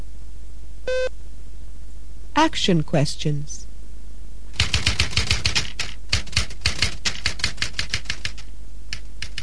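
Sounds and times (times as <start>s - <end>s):
speech: 2.4s - 3.7s
mechanical typewriter keystrokes: 4.6s - 9.4s.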